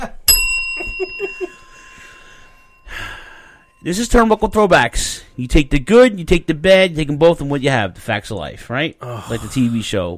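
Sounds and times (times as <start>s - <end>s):
bell ringing: 0.3s - 7.6s
faint breathy sounds: 1.6s - 3.8s
speech: 3.8s - 10.1s.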